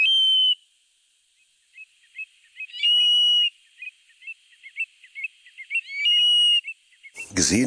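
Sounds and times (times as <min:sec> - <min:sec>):
Eurasian stone-curlew whistling cries at night by a salt lake: 0:00.0 - 0:00.6, 0:02.2 - 0:07.5
Eurasian stone-curlew soft clipped call notes: 0:01.7 - 0:07.6
speech: 0:07.4 - 0:07.6.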